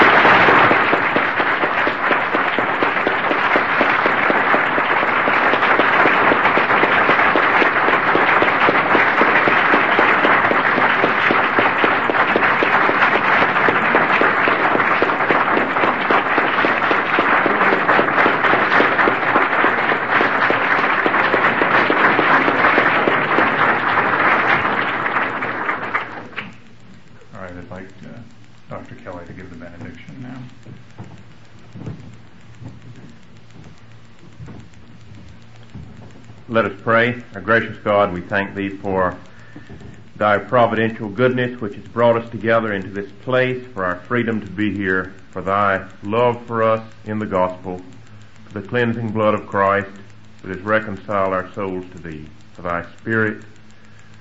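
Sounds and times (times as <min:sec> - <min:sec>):
large crowd applauding: 0:00.0 - 0:26.6
speech: 0:37.0 - 0:39.3, 0:40.2 - 0:48.0, 0:48.6 - 0:53.5.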